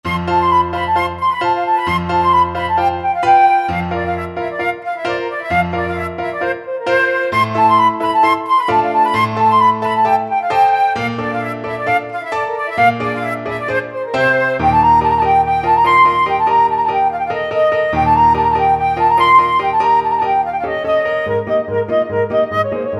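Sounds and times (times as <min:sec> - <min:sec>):
flute playing Romanian folk dance: 0:00.0 - 0:22.9.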